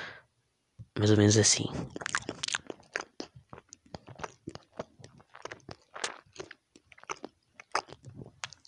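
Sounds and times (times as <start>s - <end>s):
speech: 1.0s - 2.3s
mouth noises: 1.7s - 8.6s
crunchy chewing of something crisp: 1.9s - 8.6s.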